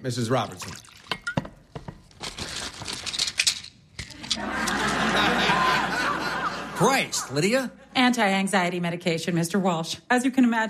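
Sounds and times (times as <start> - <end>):
speech: 0.0 - 0.9, 6.8 - 10.6
water poured from pitcher into glass: 0.4 - 1.4
crinkling and clattering handling noises: 1.7 - 4.7
laughter: 4.1 - 7.6.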